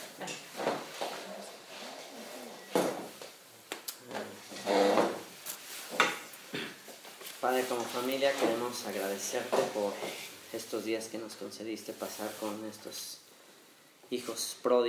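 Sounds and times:
wooden chair being shifted with drags and bumps: 0.3s - 3.3s, 4.1s - 10.4s
speech: 7.5s - 13.2s, 14.1s - 14.8s.

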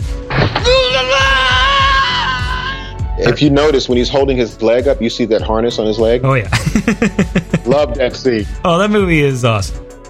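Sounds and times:
man in a movie screaming as dropped off a cliff: 0.6s - 3.0s
steady rhythmic low thumping: 3.0s - 8.7s
speech: 3.2s - 9.8s
laughter: 6.5s - 8.4s.

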